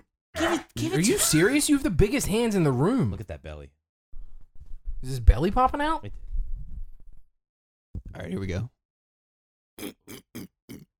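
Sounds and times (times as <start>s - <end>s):
speech: 0.4s - 3.8s, 5.0s - 6.2s, 8.2s - 8.8s, 9.8s - 10.9s
person noisily slurping a drink: 9.8s - 10.9s.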